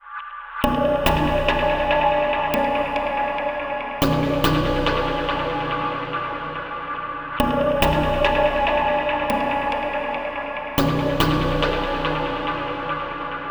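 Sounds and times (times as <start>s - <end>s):
airy chord loop in E: 0.6s - 13.5s.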